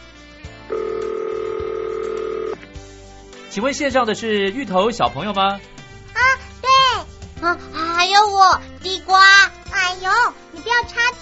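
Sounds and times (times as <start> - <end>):
two-pitch telephone ringback tone of a call-in phone call: 0.7 - 2.6
speech: 3.6 - 5.7, 7.4 - 11.2.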